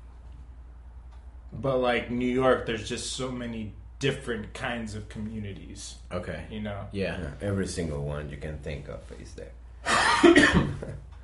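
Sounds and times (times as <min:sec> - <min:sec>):
speech: 0:01.5 - 0:09.6, 0:10.2 - 0:11.1
harsh coughing: 0:09.8 - 0:11.0.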